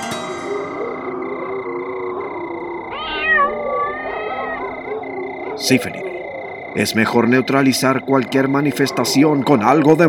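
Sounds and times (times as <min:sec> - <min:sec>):
kitten meowing at a makeshift camp: 0:02.8 - 0:04.9
speech: 0:05.6 - 0:06.1, 0:06.8 - 0:10.0.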